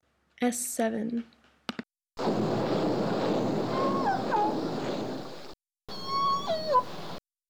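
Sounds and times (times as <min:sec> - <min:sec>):
low rushing water-like background: 0:02.2 - 0:07.2
orca calls: 0:02.2 - 0:07.2.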